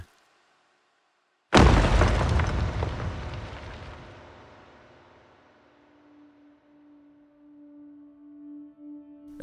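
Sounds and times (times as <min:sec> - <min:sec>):
large boulder falling onto hard ground with loud boom: 0:01.5 - 0:05.6.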